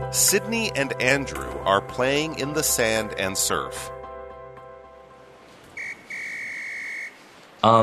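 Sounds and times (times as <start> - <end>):
speech: 0.2 - 4.0, 7.6 - 7.8
lifeguard blowing a whistle at a beach: 5.8 - 7.2.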